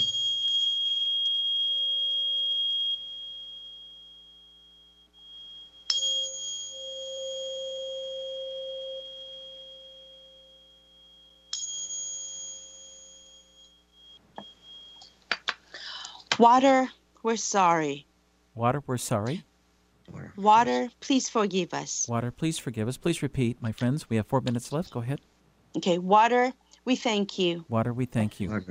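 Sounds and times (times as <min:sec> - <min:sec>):
528 Hz struck tone instrument ringing: 0:00.0 - 0:15.2
speech: 0:16.4 - 0:19.5, 0:20.4 - 0:28.6.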